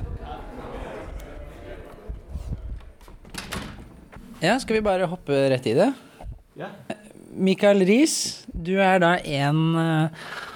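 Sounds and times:
door being pushed shut: 3.2 - 4.1
speech: 4.4 - 6.0, 6.6 - 10.5.

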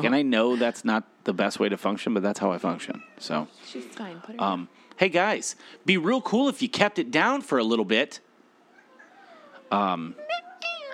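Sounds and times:
speech: 0.0 - 8.3, 9.7 - 10.2
faint hum: 0.0 - 10.9
cat meowing: 2.8 - 3.4, 8.7 - 10.9.

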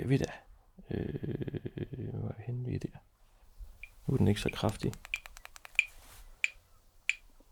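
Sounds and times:
speech: 0.1 - 3.0, 4.1 - 5.1
metronome ticking at a moderate tempo: 3.8 - 7.3.

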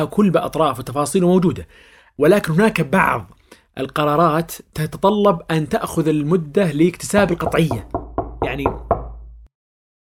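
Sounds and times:
speech: 0.0 - 9.0
single sharp knock on a door: 7.2 - 9.5.

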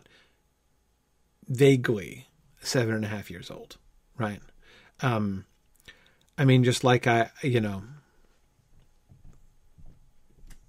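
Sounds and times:
quiet room hum: 0.0 - 10.6
speech: 1.5 - 5.5, 6.4 - 8.0
footsteps on the floor above: 8.3 - 10.6.

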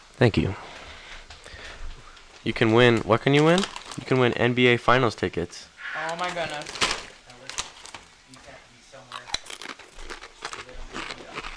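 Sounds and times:
speech: 0.2 - 0.7, 2.4 - 6.8
bag of Doritos chips crinkling and rustling: 2.7 - 4.7, 6.0 - 11.5.

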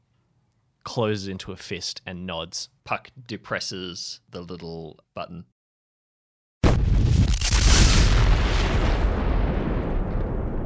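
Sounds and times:
speech: 1.0 - 5.5
explosion of a charge detonated in a building hallway: 6.6 - 10.6
heavy rumbling crash: 6.6 - 10.6.

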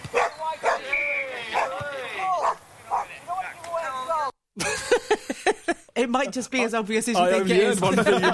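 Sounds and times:
dog barking and yelping on a football pitch: 0.1 - 0.9, 1.5 - 1.8, 2.4 - 3.2
laughter: 4.6 - 6.0, 7.4 - 8.3
speech: 6.0 - 8.3.

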